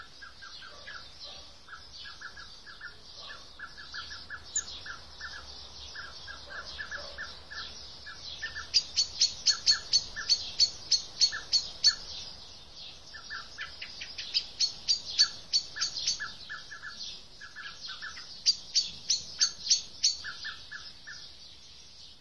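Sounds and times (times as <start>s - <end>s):
Eurasian blackbird Turdus merula giving high ticking notes and chirps: 0.0s - 22.1s.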